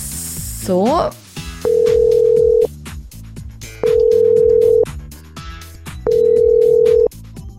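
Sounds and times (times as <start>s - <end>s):
busy music: 0.1s - 7.5s
speech: 0.6s - 1.2s
telephone line ringback tones: 1.6s - 2.7s, 3.8s - 4.9s, 6.1s - 7.1s.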